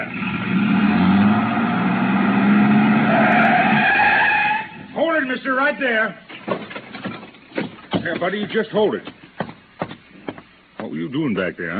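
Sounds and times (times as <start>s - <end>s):
pickup truck engine starting and roaring in an alley: 0.0s - 4.9s
tires skidding and squealing: 0.0s - 5.0s
speech: 5.7s - 6.3s, 8.1s - 9.2s, 11.1s - 11.7s.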